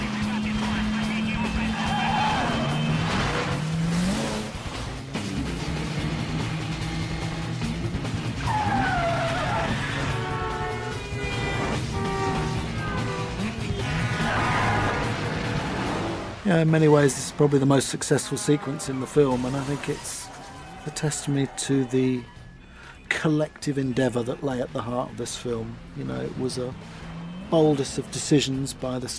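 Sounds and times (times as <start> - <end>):
car tires squealing and skidding in a chase: 0.0 - 4.9, 6.8 - 16.4, 17.4 - 22.3, 26.2 - 28.4
car engine roaring at high speed through the streets of Moscow: 0.0 - 21.4, 24.7 - 29.1
speech: 16.5 - 20.2, 20.8 - 22.4, 23.2 - 29.1.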